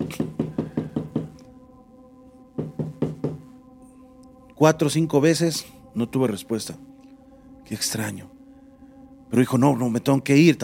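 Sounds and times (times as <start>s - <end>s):
firm knocking on a door: 0.0s - 1.4s, 2.6s - 3.5s
faint lingering hum: 0.6s - 10.6s
speech: 4.6s - 6.9s, 7.7s - 8.3s, 9.3s - 10.6s.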